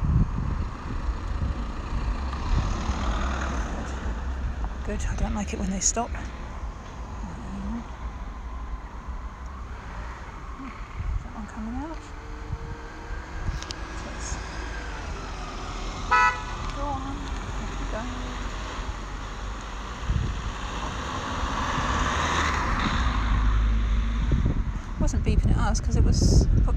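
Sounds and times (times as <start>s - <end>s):
busy road traffic rumbling past: 0.0s - 26.7s
car engine and tyre rumble approaching on a busy little road: 0.0s - 26.7s
speech: 4.9s - 6.4s
car horn blast: 16.1s - 16.7s.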